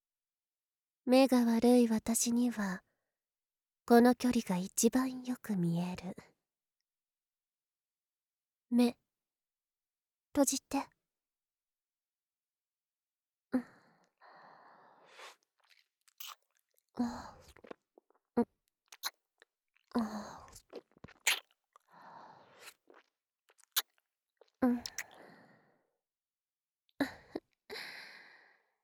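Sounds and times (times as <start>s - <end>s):
speech: 1.1s - 2.8s, 3.9s - 6.3s, 8.7s - 9.0s, 10.4s - 10.9s, 13.5s - 13.7s, 17.0s - 17.4s, 20.0s - 20.4s, 24.6s - 24.9s
chewing and biting mouth sounds in an eating roleplay: 15.6s - 16.7s, 17.4s - 21.9s, 22.5s - 24.0s, 24.9s - 25.2s.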